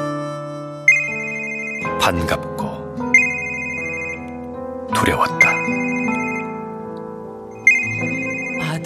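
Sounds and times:
melodic phone ringtone: 0.8 - 2.4, 3.1 - 4.4, 5.2 - 6.7, 7.5 - 8.8
speech: 2.0 - 2.8, 5.0 - 5.9.

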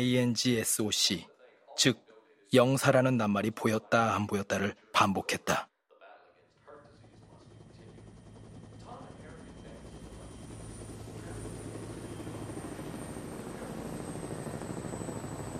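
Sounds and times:
speech: 0.0 - 5.7
helicopter rotor chopping: 6.7 - 15.5.

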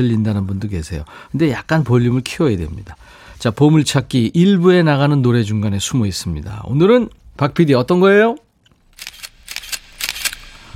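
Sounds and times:
speech: 0.0 - 8.4
camera shutter clicks: 8.9 - 10.7.

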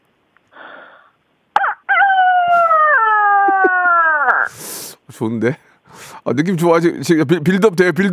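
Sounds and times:
person imitating a rooster crowing: 1.6 - 4.5
speech: 5.1 - 8.1.

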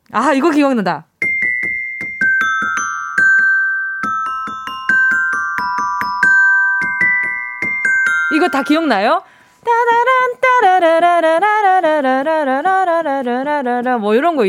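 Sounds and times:
speech: 0.1 - 1.1, 8.4 - 14.4
school bell chime playing a bright electronic melody: 1.2 - 9.4.

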